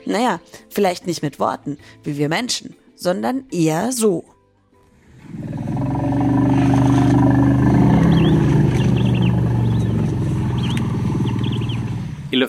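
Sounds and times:
speech: 0.1 - 4.3
deep sustained elephant rumbles: 5.0 - 12.4.

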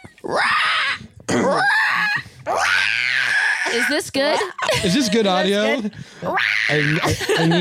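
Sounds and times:
speech: 0.3 - 0.6, 3.8 - 7.5
people imitating a raptor scream: 0.3 - 5.2, 6.2 - 7.2
laughter: 4.2 - 5.8, 6.8 - 7.5.

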